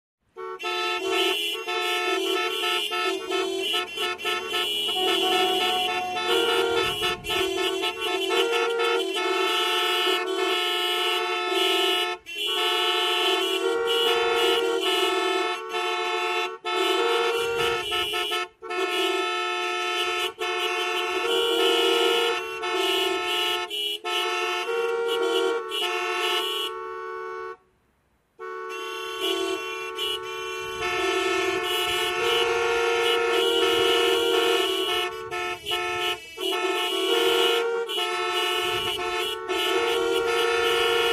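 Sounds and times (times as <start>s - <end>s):
many car horns honking: 0.2s - 27.6s, 28.4s - 41.1s.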